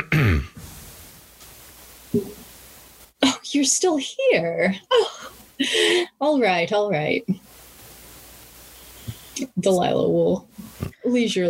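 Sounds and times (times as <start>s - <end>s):
nightclub bouncer clearing his throat: 0.0s - 0.6s
speech: 3.6s - 7.5s, 9.4s - 10.5s, 11.1s - 11.4s.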